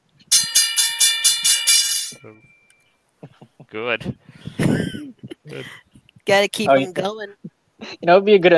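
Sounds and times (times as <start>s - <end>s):
loud bell ringing with quick metallic strikes: 0.3s - 2.9s
speech: 2.2s - 2.6s, 3.2s - 8.5s.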